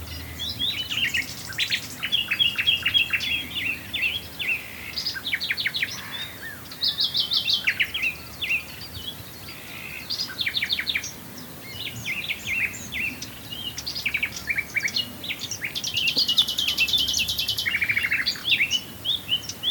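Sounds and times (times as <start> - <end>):
common nightingale singing at Swale: 0.0 - 19.6.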